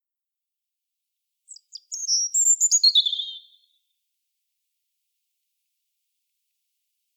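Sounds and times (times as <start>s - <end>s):
European robin Erithacus rubecula song phrase with sweet thin warbling: 1.5s - 3.6s.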